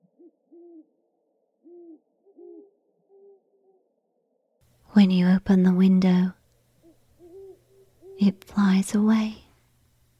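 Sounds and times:
owl hooting outside: 0.0s - 3.8s, 6.8s - 8.3s
speech: 4.9s - 6.4s, 8.2s - 9.4s.

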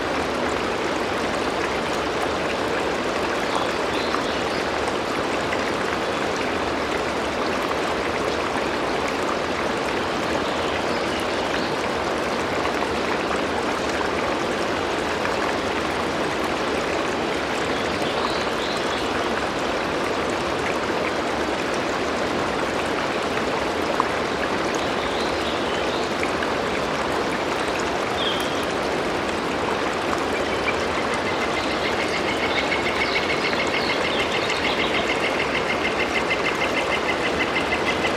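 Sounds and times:
river or creek in north-central Colorado rushing steadily: 0.0s - 38.1s.

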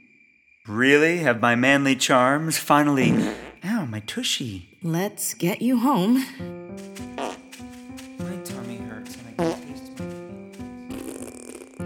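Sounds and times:
speech: 0.7s - 7.0s
long, loud, buzzy fart sound effect: 3.0s - 3.6s, 7.2s - 7.5s, 10.9s - 11.8s.

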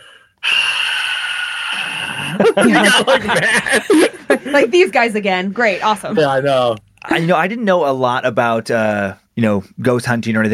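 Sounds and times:
voice imitating a long heavy breath: 0.0s - 2.6s
speech: 1.8s - 10.5s
laughter: 2.0s - 4.9s.

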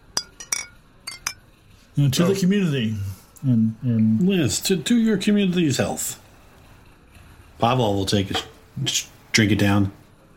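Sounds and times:
glasses clinking in a toast to a deal: 0.0s - 1.5s
speech: 2.0s - 6.2s, 7.6s - 10.0s.

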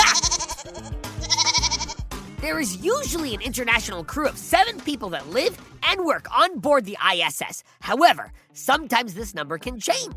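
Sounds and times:
goat bleating: 0.0s - 2.0s
speech: 2.4s - 10.1s.

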